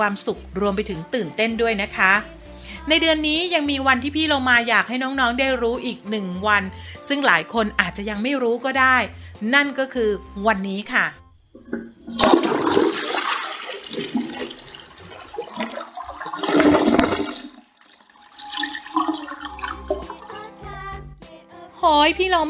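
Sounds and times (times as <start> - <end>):
speech: 0.0 - 12.4, 21.8 - 22.4
toilet flushing: 11.6 - 20.8
toilet refill water gurgling and trickling: 11.6 - 21.0.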